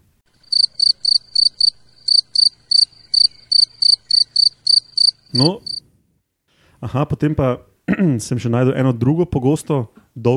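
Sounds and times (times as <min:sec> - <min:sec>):
field cricket chirping by rubbing its wings: 0:00.3 - 0:05.8
speech: 0:05.3 - 0:05.7, 0:06.9 - 0:10.3.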